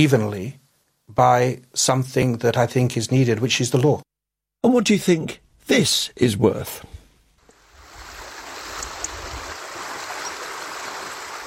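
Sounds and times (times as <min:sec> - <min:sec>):
speech: 0:00.0 - 0:06.9
forest stream rushing in the uplands of Skiddaw Forest in the Lake District: 0:07.4 - 0:11.4.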